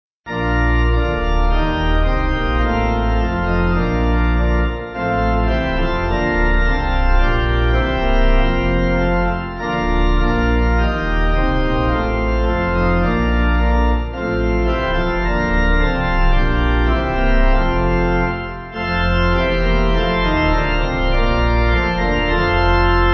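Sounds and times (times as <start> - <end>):
pipe organ playing a hymn: 0.3 - 23.1.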